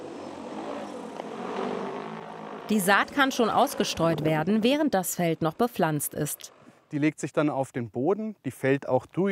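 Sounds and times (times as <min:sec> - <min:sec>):
60-kilogram agricultural drone loaded with seed taking off over farm fields: 0:00.0 - 0:06.8
speech: 0:02.7 - 0:09.2.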